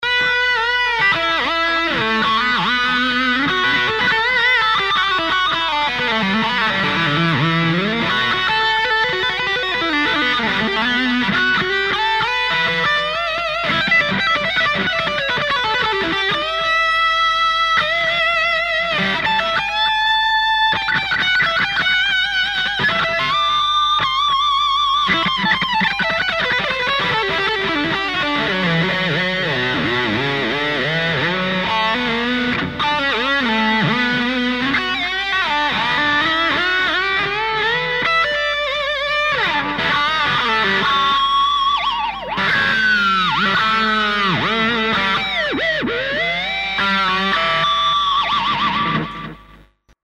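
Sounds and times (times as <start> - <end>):
distorted electric guitar through a Vox AC30 amp with metal echo: 0.0 - 50.0.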